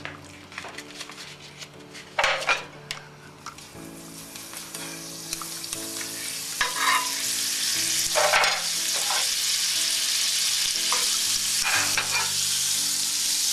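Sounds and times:
margarine melting and sizzling in a hot frying pan: 3.6 - 13.5
utensil scraping and clinking against a frying pan: 6.6 - 7.2, 8.1 - 9.3, 10.9 - 12.3.

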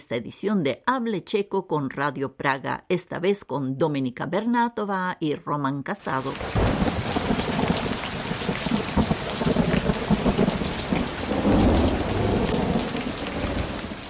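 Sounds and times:
speech: 0.0 - 7.0
heavy rain spattering on surfaces: 6.2 - 14.0
low rumbling: 6.5 - 14.0.

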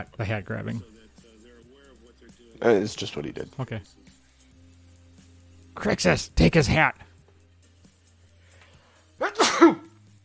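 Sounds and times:
speech: 0.0 - 1.0, 2.6 - 4.0, 5.8 - 7.1
single loud sneeze with sharp inhaled buildup and breathy burst: 9.2 - 10.0.

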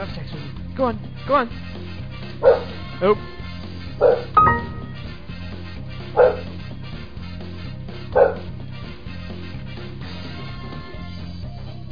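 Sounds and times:
speech: 0.8 - 1.8, 2.4 - 3.4, 4.0 - 4.6
dog barking: 2.4 - 2.8, 4.0 - 4.4, 6.2 - 6.6, 8.1 - 8.5.

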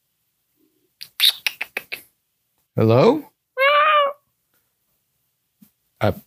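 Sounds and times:
speech: 2.8 - 3.3, 6.0 - 6.2
small malnourished cat meowing on a fire escape outside a window: 3.6 - 4.2.

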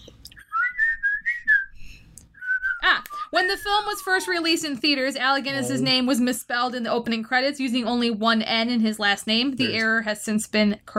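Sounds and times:
person whistling a short wavering melody: 0.5 - 1.8, 2.4 - 4.3
speech: 3.3 - 10.9.

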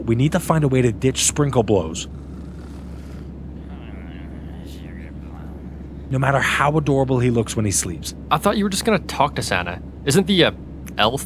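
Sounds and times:
speech: 0.0 - 2.3, 6.1 - 11.2
airplane cabin engine drone at cruise: 0.0 - 11.2.

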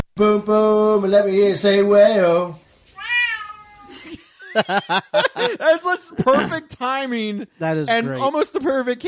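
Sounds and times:
speech: 0.2 - 2.6, 4.5 - 9.0
cat meowing: 2.9 - 3.9
laughter: 3.9 - 6.7.

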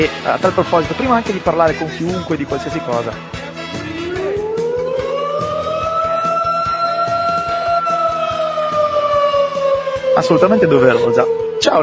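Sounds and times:
speech: 0.0 - 3.4, 10.2 - 11.8
siren wail: 3.8 - 11.8.

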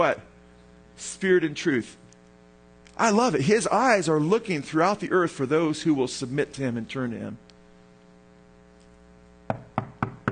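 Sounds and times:
speech: 0.0 - 0.3, 1.0 - 2.0, 3.0 - 7.4
faint low hum: 0.0 - 10.2
firm knocking on a door: 9.5 - 10.2.

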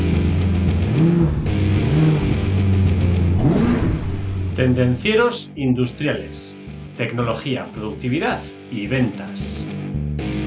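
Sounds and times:
car engine starting and revving: 0.0 - 5.2
speech: 4.6 - 9.8.

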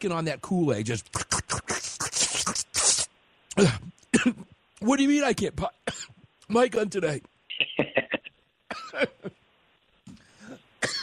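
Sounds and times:
speech: 0.0 - 1.4, 3.6 - 5.9, 6.5 - 7.3, 8.9 - 9.4
person coughing and choking: 3.5 - 4.5, 7.6 - 9.3, 10.4 - 11.0
throat clearing: 3.5 - 4.6, 10.4 - 11.0.

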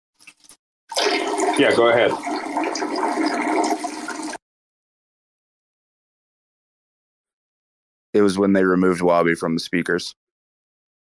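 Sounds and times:
toilet flushing: 0.9 - 4.4
speech: 1.6 - 2.3, 8.2 - 10.2.

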